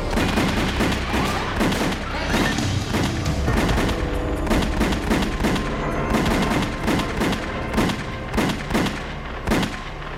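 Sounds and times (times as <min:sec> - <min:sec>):
shooters firing rapid gunfire beside a parked car: 0:00.1 - 0:10.0.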